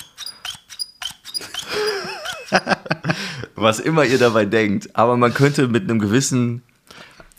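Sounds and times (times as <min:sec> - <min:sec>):
hole punch mechanism squeaking: 0:00.0 - 0:02.6
laughter: 0:01.6 - 0:03.5
speech: 0:02.5 - 0:02.9, 0:03.6 - 0:06.7.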